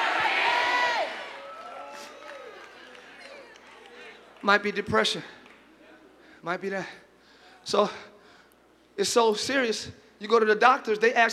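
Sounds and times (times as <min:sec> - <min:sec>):
crowd screaming and cheering: 0:00.0 - 0:04.2
whoops: 0:00.0 - 0:04.2
speech: 0:04.4 - 0:05.4, 0:06.4 - 0:07.0, 0:07.6 - 0:08.1, 0:09.0 - 0:11.3.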